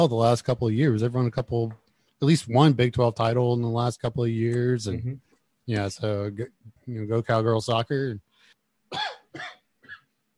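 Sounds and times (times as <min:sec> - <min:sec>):
speech: 0:00.0 - 0:08.3, 0:08.9 - 0:09.6
person with a lingering cough coughing dryly: 0:08.9 - 0:10.1.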